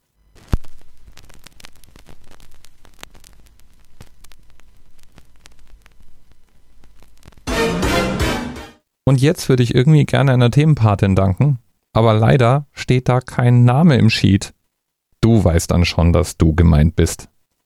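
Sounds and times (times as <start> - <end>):
vinyl record surface noise crackle with pops and clicks on a record player: 0.0 - 8.7
loud full sound from a record player: 7.5 - 8.8
speech: 9.1 - 14.6, 15.2 - 17.3.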